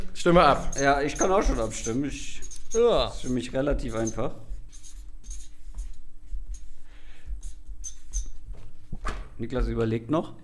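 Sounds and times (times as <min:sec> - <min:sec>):
speech: 0:00.2 - 0:04.4, 0:09.4 - 0:10.4
pen scratching on paper: 0:00.4 - 0:08.5.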